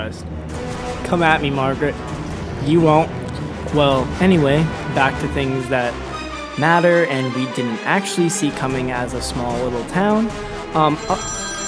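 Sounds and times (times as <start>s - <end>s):
speech: 0.0s - 11.4s
telephone ringing with a bright electronic tone: 10.9s - 11.6s.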